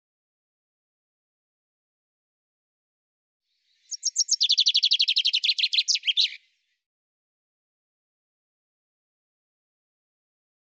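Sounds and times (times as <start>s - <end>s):
common chaffinch song: 3.6s - 6.7s.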